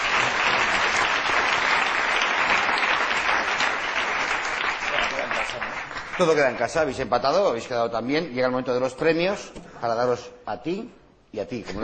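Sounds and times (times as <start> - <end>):
audience applause after a quiz answer ends in a tie: 0.0 - 6.6
speech: 6.2 - 11.8.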